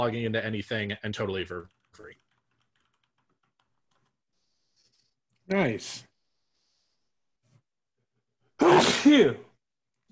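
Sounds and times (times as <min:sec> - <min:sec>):
speech: 0:00.0 - 0:02.2, 0:05.5 - 0:06.1, 0:08.7 - 0:09.5
person sneezing: 0:08.6 - 0:09.4.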